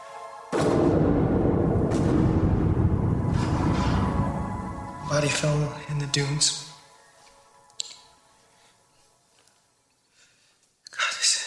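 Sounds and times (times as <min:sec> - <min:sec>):
rifle shots fired at night among sand dunes: 0:00.6 - 0:04.3
continuous rumbling noise: 0:00.8 - 0:05.6
speech: 0:05.2 - 0:06.7.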